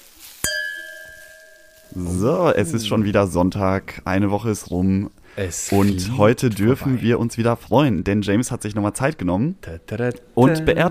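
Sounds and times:
glasses of Riesling wine clinking in a toast: 0.4s - 2.9s
speech: 1.9s - 10.8s.

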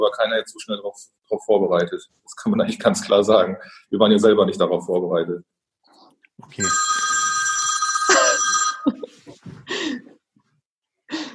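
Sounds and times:
speech: 0.0s - 5.6s, 6.4s - 6.9s
telephone ringing with a steady electronic trill: 6.6s - 9.1s
laughter: 8.1s - 10.0s
breathy gasps and vocal bursts: 9.6s - 10.1s.

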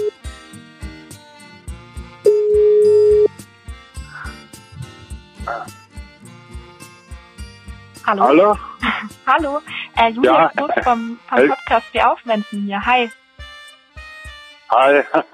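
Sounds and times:
rhythmic music: 0.0s - 15.3s
telephone ringing tone as a call goes through: 2.3s - 3.3s
speech: 8.1s - 13.2s, 14.7s - 15.3s
laughter: 9.7s - 11.6s, 14.8s - 15.3s.

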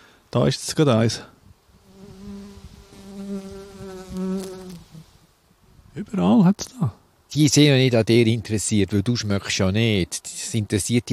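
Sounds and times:
speech: 0.3s - 1.4s, 6.0s - 11.1s
bee buzzing around head: 1.7s - 5.3s.

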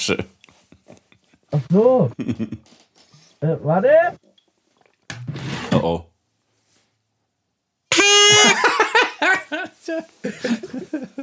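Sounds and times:
speech: 0.0s - 0.4s, 1.5s - 2.8s, 3.4s - 4.2s, 5.7s - 6.1s, 8.0s - 11.2s
people laughing: 2.2s - 2.7s, 8.3s - 11.2s
red toy horn honking: 7.9s - 8.7s.

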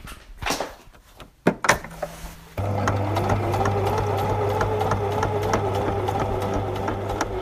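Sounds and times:
sewing machine stitching a jeans pocket onto a jute bag: 2.6s - 7.4s.

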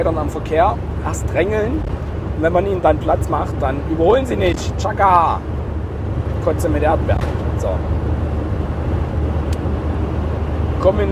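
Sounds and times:
speech: 0.0s - 5.5s, 6.4s - 8.0s, 10.8s - 11.1s
bus engine driving downhill in a video game: 0.0s - 11.1s
road noise of a bus in a video game: 0.8s - 2.5s, 5.2s - 10.8s.

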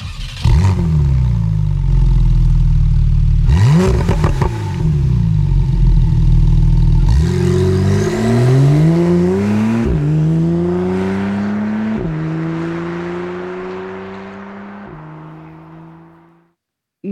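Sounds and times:
Porsche 911 Carrera 4 GTS Cabriolet sports car engine idling, revving and accelerating through gear shifts: 0.2s - 16.4s.

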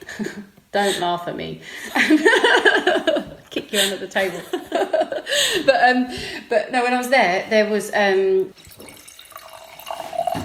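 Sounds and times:
speech: 0.2s - 8.7s
wine pouring into a glass: 8.6s - 10.4s.

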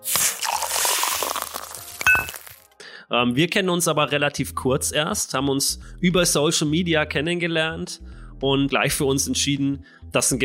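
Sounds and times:
fizzy liquid noise: 0.0s - 2.6s
drinking glasses clinking together in a toast: 2.0s - 2.4s
speech: 3.1s - 10.4s.

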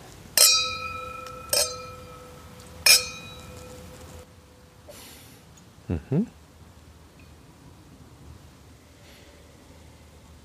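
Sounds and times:
wine glasses clinking in a toast: 0.4s - 4.2s
speech: 5.9s - 6.4s.

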